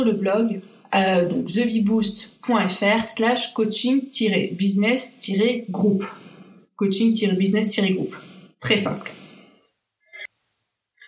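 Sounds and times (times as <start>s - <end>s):
speech: 0.0s - 9.2s
woman breathing heavily out of breath from excitement: 6.1s - 6.7s, 9.2s - 10.3s.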